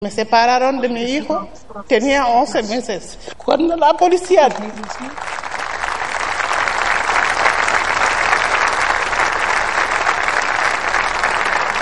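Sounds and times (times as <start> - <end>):
speech: 0.0 - 5.4
large audience applauding: 4.3 - 11.8.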